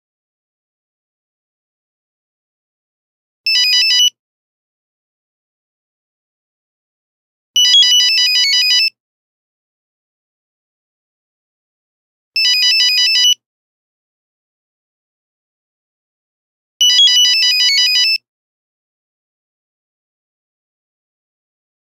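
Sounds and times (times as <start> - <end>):
phone buzzer: 3.5 - 4.2, 7.6 - 9.0, 12.4 - 13.4, 16.8 - 18.2.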